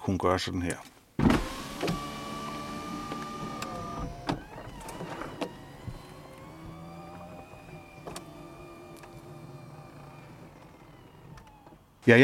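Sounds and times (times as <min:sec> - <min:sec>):
speech: 0:00.1 - 0:02.0, 0:12.1 - 0:12.2
convertible soft top latch clicks: 0:01.2 - 0:11.8
convertible soft top mechanical clunks: 0:01.2 - 0:11.9
electric convertible soft top motor whine: 0:01.3 - 0:12.0.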